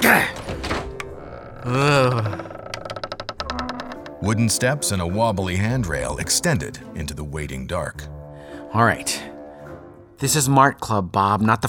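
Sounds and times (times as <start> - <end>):
stuck door long wavering creak: 0.0 - 4.6
speech: 0.1 - 0.4, 1.6 - 2.5, 4.2 - 9.3, 10.2 - 11.6
stuck door shoved with heavy thump and scrape: 0.3 - 1.3
rattling clicks of a door giving way: 0.3 - 4.2.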